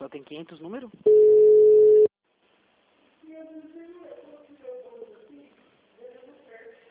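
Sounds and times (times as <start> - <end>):
speech: 0.2 - 1.4
ringback tone of an outgoing telephone call: 1.1 - 2.1.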